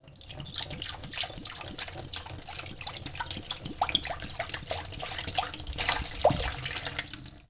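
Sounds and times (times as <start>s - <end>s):
glass bottle draining: 0.0s - 7.4s.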